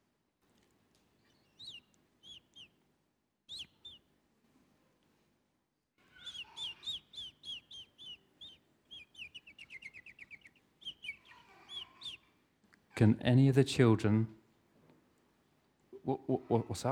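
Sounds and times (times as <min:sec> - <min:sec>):
bird in a room clucking and chirping: 0:01.2 - 0:02.8, 0:03.5 - 0:04.1, 0:06.0 - 0:12.4
speech: 0:13.0 - 0:14.4, 0:16.1 - 0:16.9.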